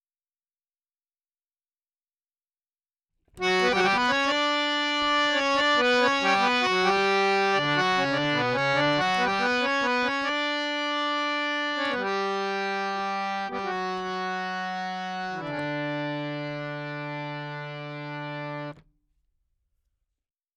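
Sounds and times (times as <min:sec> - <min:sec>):
dry harmonium melody: 0:03.4 - 0:18.8.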